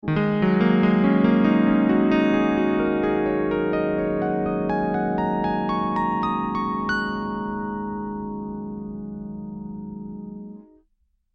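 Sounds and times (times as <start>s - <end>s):
CP80 electric piano played upward with sustain: 0.0s - 10.7s.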